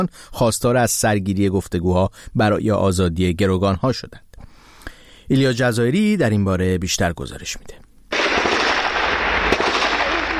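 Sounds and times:
speech: 0:00.0 - 0:04.3, 0:05.3 - 0:07.9
rumbling and crackling barrage of airstrikes and artillery fire on Gaza: 0:08.1 - 0:10.3
sharp blast: 0:08.1 - 0:10.3.

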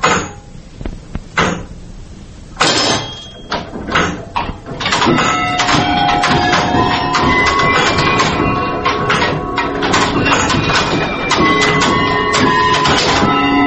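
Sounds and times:
rattling wood of small doors in a bell tower: 0:02.6 - 0:13.6
small wooden doors of a bell tower clock mechanism knocking and clunking: 0:02.6 - 0:13.6
drawn-out squeaky creak of stiff hinges on small wooden doors: 0:03.0 - 0:13.5.

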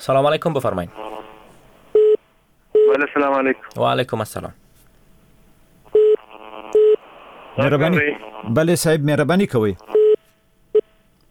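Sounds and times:
speech: 0:00.0 - 0:01.1, 0:02.9 - 0:04.6, 0:07.6 - 0:10.0
faint steady hum: 0:00.0 - 0:11.2
electronic dropped-call or busy signal phone tone: 0:05.9 - 0:07.0.

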